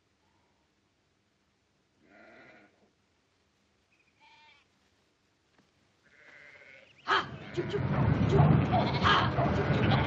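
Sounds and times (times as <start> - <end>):
flock of sheep bleating: 2.0 - 2.8, 6.1 - 7.7, 8.7 - 10.0
low rumbling murmur: 7.2 - 10.0.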